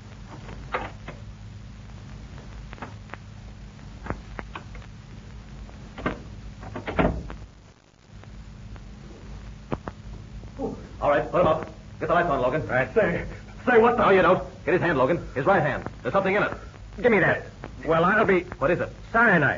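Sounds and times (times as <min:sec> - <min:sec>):
low steady hum: 0:00.0 - 0:19.5
door opening: 0:00.3 - 0:01.2, 0:06.0 - 0:07.3
speech: 0:11.1 - 0:19.5.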